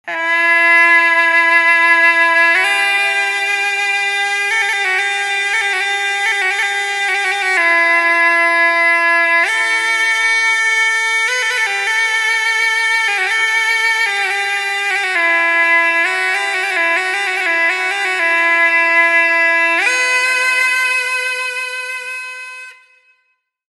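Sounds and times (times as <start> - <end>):
gaita playing: 0.0 - 23.3.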